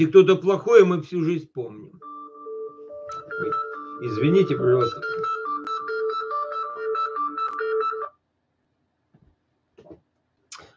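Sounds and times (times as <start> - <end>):
speech: 0.0 - 2.0, 3.4 - 5.3
mobile phone ringtone playing a bright repeating electronic melody in a pocket: 2.0 - 8.2.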